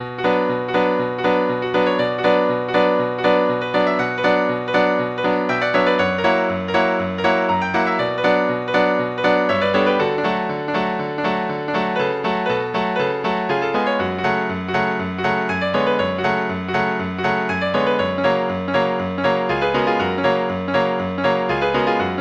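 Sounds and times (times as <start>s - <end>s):
piano piece: 0.0s - 22.1s.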